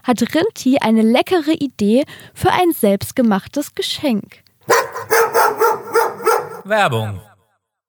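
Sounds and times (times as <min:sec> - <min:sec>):
speech: 0:00.0 - 0:05.2, 0:06.6 - 0:07.3
dog barking: 0:04.7 - 0:06.7.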